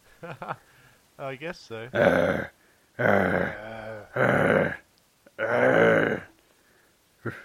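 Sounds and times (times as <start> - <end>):
speech: 0.2 - 3.6
person grunting: 1.9 - 6.3, 7.2 - 7.4
person imitating a mummy with a zombie-like groan: 2.0 - 6.3, 7.2 - 7.4.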